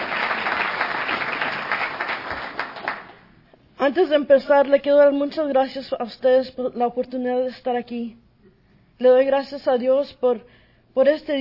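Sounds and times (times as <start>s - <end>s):
room full of people applauding: 0.0s - 3.2s
speech: 3.8s - 8.2s, 9.0s - 11.3s.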